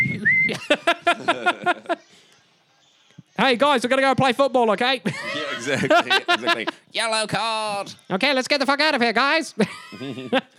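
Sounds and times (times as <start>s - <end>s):
whistle sounding as an alarm system: 0.0s - 0.7s
laughter: 0.5s - 2.1s, 5.0s - 6.9s, 9.6s - 10.5s
speech: 0.5s - 2.1s, 3.4s - 10.5s.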